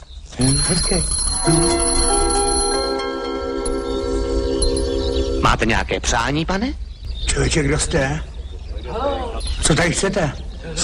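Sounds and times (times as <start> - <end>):
speech: 0.4 - 2.1, 5.5 - 10.8
small bell ringing with a bright metallic tone: 0.4 - 5.0.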